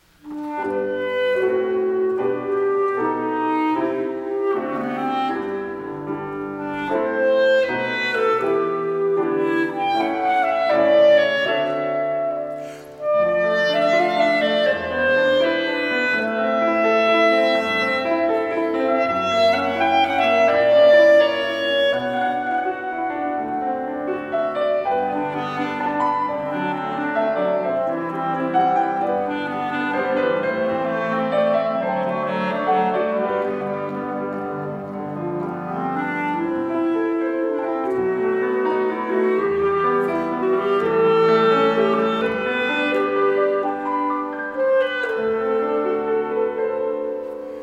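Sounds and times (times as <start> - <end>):
prelude in G major for piano and clarinet: 0.0 - 47.6.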